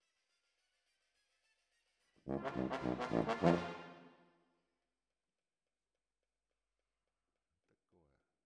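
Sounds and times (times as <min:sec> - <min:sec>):
trombone: 0:02.3 - 0:04.1.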